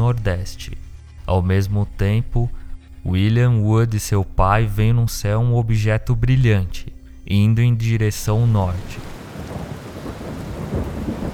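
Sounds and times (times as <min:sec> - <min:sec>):
heavy rain in a thunderstorm: 0:00.0 - 0:11.3
speech: 0:00.1 - 0:09.1
deep rolling thunder: 0:08.8 - 0:11.3.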